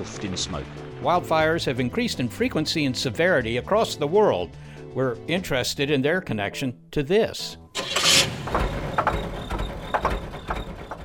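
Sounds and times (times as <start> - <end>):
speech: 0.0 - 7.6
car engine idling: 7.8 - 11.0.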